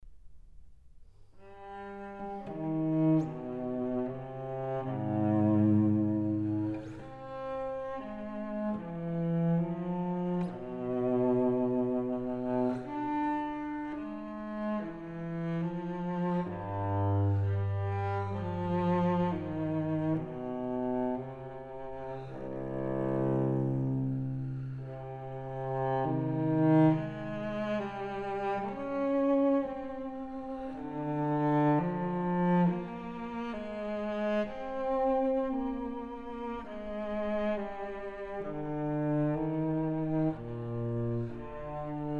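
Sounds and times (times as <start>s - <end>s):
solo cello suite in C minor: 1.0s - 42.1s.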